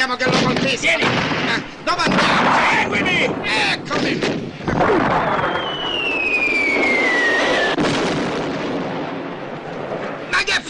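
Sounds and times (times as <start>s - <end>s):
speech: 0.0s - 2.5s
gunfire shooting at people in a battle: 0.2s - 10.3s
high descending whistle: 5.2s - 7.8s.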